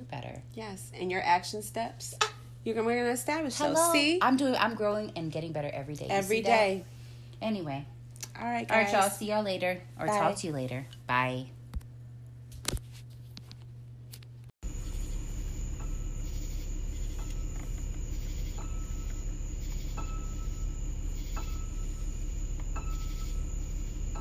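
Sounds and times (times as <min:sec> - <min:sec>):
speech: 0:00.4 - 0:11.6
crickets chirping: 0:14.6 - 0:24.1.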